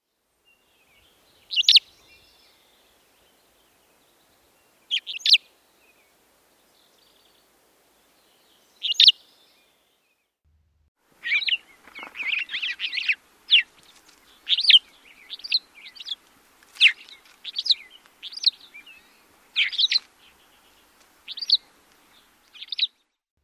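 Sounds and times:
Cassin's finch liquid two-three syllable calls: 1.5s - 2.3s, 4.9s - 5.4s, 8.8s - 9.2s, 11.2s - 13.8s, 14.4s - 16.2s, 16.8s - 21.6s.

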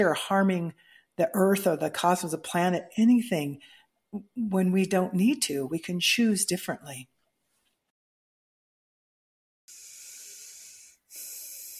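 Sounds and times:
speech: 0.0s - 7.1s
deep breathing: 9.7s - 11.7s.

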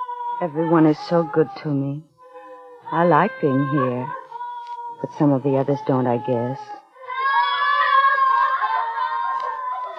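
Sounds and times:
distant high-pitched wavering scream in the night: 0.0s - 9.9s
speech: 0.4s - 2.1s, 2.8s - 4.2s, 5.0s - 6.8s.

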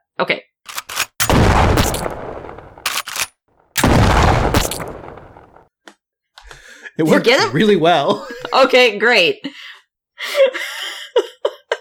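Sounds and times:
speech: 0.2s - 0.5s, 7.0s - 9.6s
video game gunfire aimed at a pumpkin-headed enemy: 0.7s - 5.6s.

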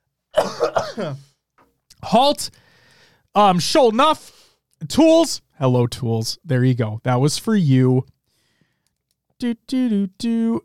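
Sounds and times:
person clearing throat: 0.3s - 1.3s
person coughing roughly: 0.3s - 1.3s
speech: 0.6s - 1.3s, 2.0s - 2.6s, 3.4s - 8.1s, 9.4s - 10.6s.

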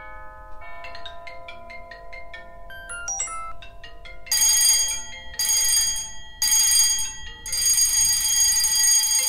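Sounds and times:
plantation bell from the southern United States: 0.8s - 9.2s
chiming electronic tones: 2.7s - 4.0s
bell notes: 2.7s - 5.6s
harsh insistent alarm bell ringing: 2.7s - 9.2s.

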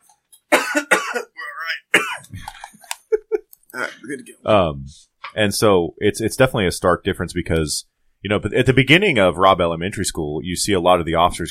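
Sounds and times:
person coughing and sputtering after choking on a drink: 0.5s - 4.3s
speech: 4.1s - 11.4s.

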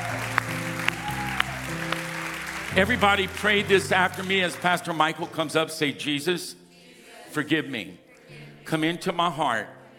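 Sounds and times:
church audience clapping in unison: 0.0s - 5.5s
sustained music: 0.0s - 9.9s
speech: 2.8s - 6.6s, 7.3s - 8.0s, 8.7s - 9.8s.

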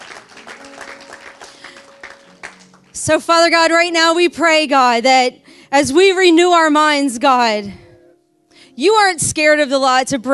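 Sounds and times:
audience clapping: 0.0s - 3.0s
speech: 3.0s - 7.8s, 8.8s - 10.3s.

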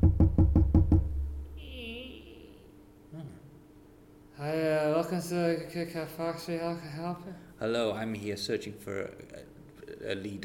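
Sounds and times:
knocking on a door: 0.0s - 1.4s
speech: 5.2s - 10.4s.

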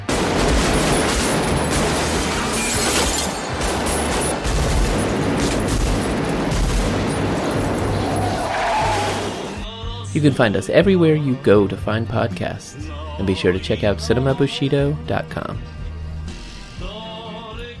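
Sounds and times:
gunfire in a film trailer: 0.0s - 8.0s
shattering: 0.0s - 9.4s
car engines roaring: 0.9s - 9.6s
tyres skidding: 1.0s - 9.7s
speech: 10.2s - 15.8s.

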